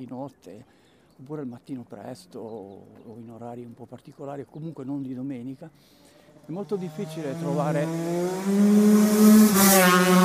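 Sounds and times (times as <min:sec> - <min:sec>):
speech: 0:00.0 - 0:10.2
motorcycle engine revving: 0:06.3 - 0:10.2.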